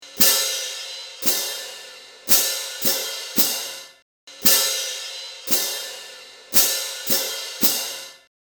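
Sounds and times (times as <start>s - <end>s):
cymbals: 0.0s - 8.3s.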